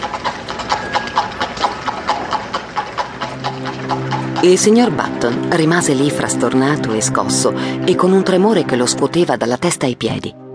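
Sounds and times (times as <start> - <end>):
horse hooves clip-clopping as a horse-drawn carriage pulls away: 0.0 - 7.1
speech: 3.9 - 10.4.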